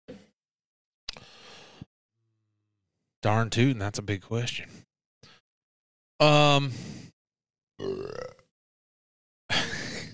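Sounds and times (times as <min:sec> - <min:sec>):
speech: 0:03.2 - 0:04.9, 0:06.2 - 0:07.0, 0:07.8 - 0:08.4
short guttural belches: 0:07.8 - 0:08.5.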